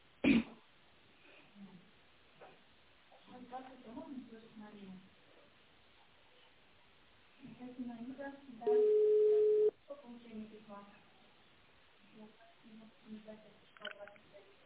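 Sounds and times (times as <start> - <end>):
narrow telephone-quality speech: 8.6 - 9.7
telephone touch-tone keypad beep: 8.7 - 9.7.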